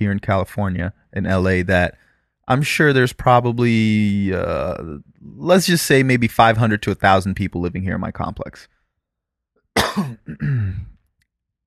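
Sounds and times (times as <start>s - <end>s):
speech: 0.0s - 8.8s, 9.8s - 10.9s
harsh raspy coughing after smoking: 9.8s - 11.0s.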